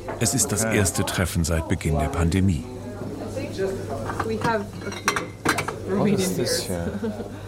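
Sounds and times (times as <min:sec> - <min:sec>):
speech: 0:00.0 - 0:02.8, 0:03.6 - 0:05.2, 0:05.9 - 0:07.4
kitchenware rattling during rummaging through supplies: 0:04.0 - 0:05.9
clinking glass while picking out a Romanian beer in Bucharest: 0:04.2 - 0:05.8
laughter: 0:06.5 - 0:07.4.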